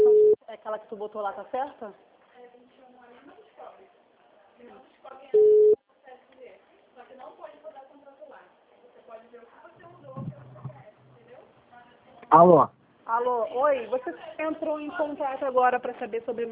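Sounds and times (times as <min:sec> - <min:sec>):
telephone busy signal after a dropped call: 0:00.0 - 0:00.4, 0:05.4 - 0:05.8
people conversing: 0:00.0 - 0:16.5
speech: 0:00.8 - 0:02.8, 0:04.6 - 0:05.7, 0:12.3 - 0:16.5.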